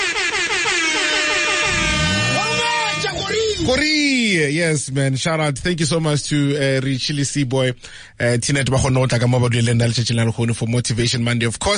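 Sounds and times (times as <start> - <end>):
loud sustained air horn blast with a brassy tone: 0.0 - 3.5
low rumbling pitch sweep: 1.3 - 3.7
speech: 3.7 - 11.7.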